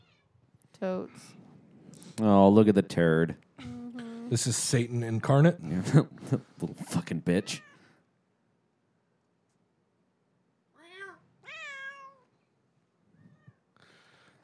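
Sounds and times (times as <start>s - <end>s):
speech: 0.8s - 1.4s, 2.2s - 3.7s, 4.3s - 7.7s
laughter: 5.6s - 7.0s
cat meowing: 10.8s - 12.3s.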